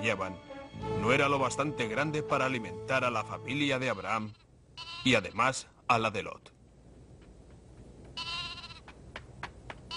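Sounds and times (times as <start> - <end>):
speech: 0.0 - 6.6
lamb bleating: 3.9 - 5.4, 8.2 - 8.8.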